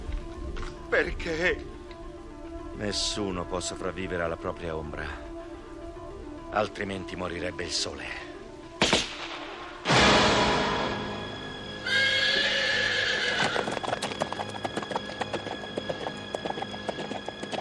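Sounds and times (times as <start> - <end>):
speech: 0.9 - 1.7, 2.8 - 5.2, 6.5 - 8.3
sharp bangs: 8.8 - 11.4
horse whinnying: 11.8 - 14.5
horse hooves clip-clopping along a shore: 12.4 - 17.5.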